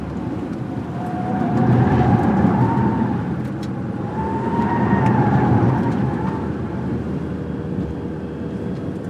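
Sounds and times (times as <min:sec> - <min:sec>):
compact car cornering: 0:00.1 - 0:08.8.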